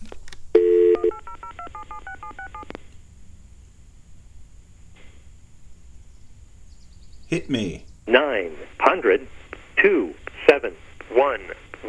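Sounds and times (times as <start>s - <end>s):
telephone dial tone: 0.6s - 2.6s
speech: 7.3s - 11.4s.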